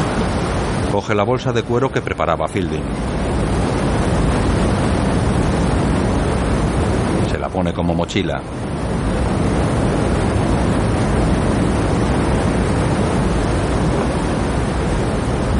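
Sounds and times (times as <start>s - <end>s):
water falling forcefully in a waterfall: 0.0s - 15.5s
speech: 0.9s - 3.6s, 7.5s - 9.3s.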